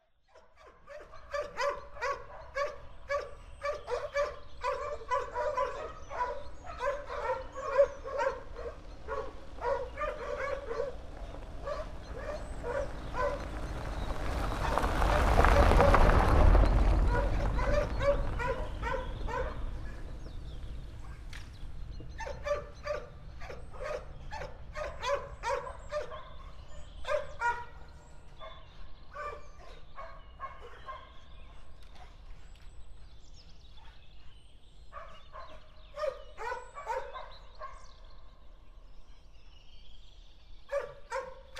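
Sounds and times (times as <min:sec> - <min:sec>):
dogs: 0:00.3 - 0:20.4, 0:21.0 - 0:38.5, 0:40.6 - 0:41.5
car: 0:08.8 - 0:22.2.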